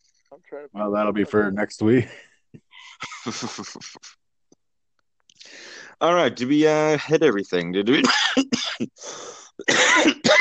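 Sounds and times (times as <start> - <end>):
speech: 0.3 - 4.2, 5.4 - 10.2
laughter: 2.6 - 4.2
breathy wheeze: 5.4 - 6.0, 9.0 - 9.6
person coughing into the microphone: 8.0 - 9.0, 9.6 - 10.3.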